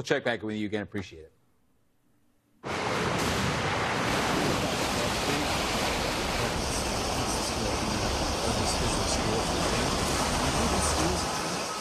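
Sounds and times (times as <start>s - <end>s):
speech: 0.0s - 1.4s
loud roar of ocean swell surging ashore: 2.6s - 11.7s.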